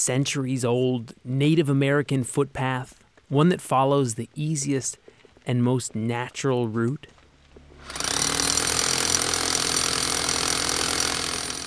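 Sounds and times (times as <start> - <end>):
speech: 0.0 - 7.2
power drill boring holes into a big boulder during trail repair in the woods: 7.8 - 11.6.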